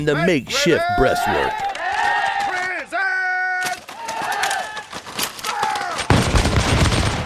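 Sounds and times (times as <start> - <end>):
speech: 0.0 - 1.7
men yelling and shouting: 0.0 - 4.8
musket fire crackling in scattered shots: 5.7 - 7.2.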